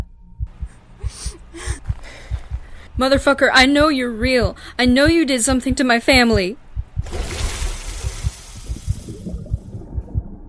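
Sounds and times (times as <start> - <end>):
low heavy thuds: 0.4 - 10.4
speech: 3.0 - 6.6
water sloshing and splashing as something moves through it: 6.9 - 10.1.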